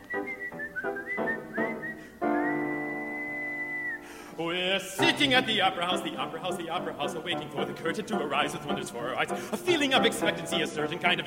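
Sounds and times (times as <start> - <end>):
person whistling a short tune: 0.0 - 4.2
speech: 4.5 - 11.2.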